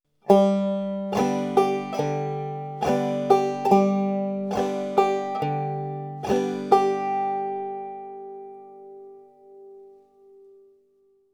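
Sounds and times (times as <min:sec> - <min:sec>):
bum ditty strummed rhythm with alternating bass: 0:00.3 - 0:09.1.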